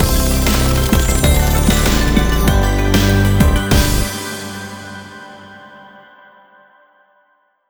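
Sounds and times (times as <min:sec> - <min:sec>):
outro music: 0:00.0 - 0:06.0.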